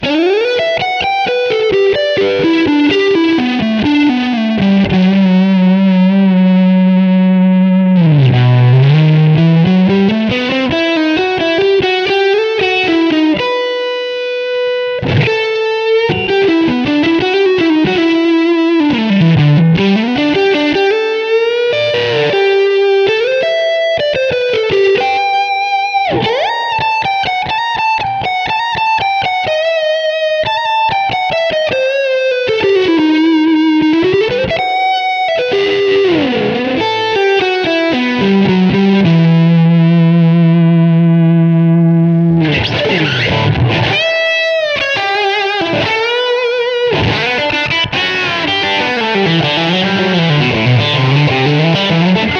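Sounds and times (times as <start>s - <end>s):
electric guitar lead through a modelling amp: 0.0s - 52.3s.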